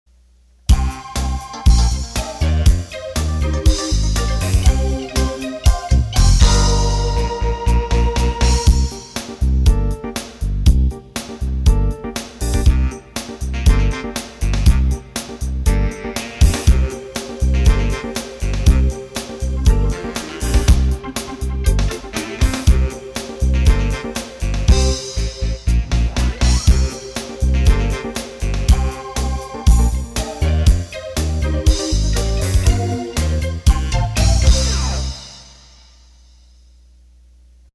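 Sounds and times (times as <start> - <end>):
rhythm and blues music: 0.6 - 35.6.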